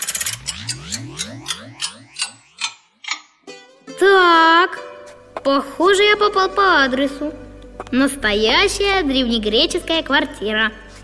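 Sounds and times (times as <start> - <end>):
bright ringing clock strike: 0.0 - 3.0
descending swirling tone: 0.0 - 3.0
old antique clock ticking: 0.0 - 3.3
speech: 4.0 - 4.8, 5.4 - 10.8.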